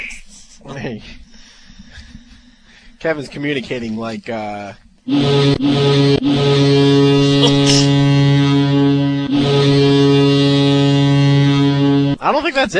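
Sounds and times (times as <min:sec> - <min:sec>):
speech: 0:00.7 - 0:01.2, 0:03.0 - 0:08.2, 0:12.3 - 0:12.7
loud deep foghorn blast rich with harmonics: 0:05.1 - 0:12.2.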